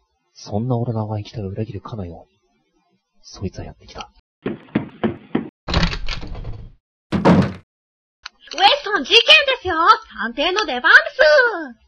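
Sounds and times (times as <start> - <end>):
speech: 0.4 - 2.4, 3.2 - 4.6, 8.9 - 11.8
sharp knocks on a door: 4.4 - 5.5, 6.3 - 7.6
door rattling: 5.7 - 7.6
heavy thump: 7.1 - 7.6.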